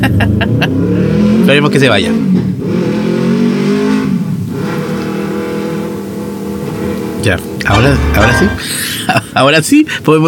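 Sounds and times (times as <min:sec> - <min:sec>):
speech: 0:00.0 - 0:02.5, 0:07.2 - 0:10.2
motorcycle engine with an open exhaust revving outside: 0:02.2 - 0:07.2.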